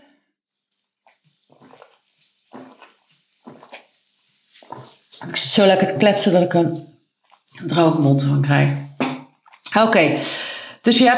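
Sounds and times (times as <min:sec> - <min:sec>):
person sipping water: 0:00.6 - 0:07.7, 0:09.3 - 0:09.7
soft slurping gulps and swallows of water: 0:00.6 - 0:07.8, 0:09.2 - 0:09.8
speech: 0:05.2 - 0:06.9, 0:07.6 - 0:08.8, 0:09.7 - 0:11.1.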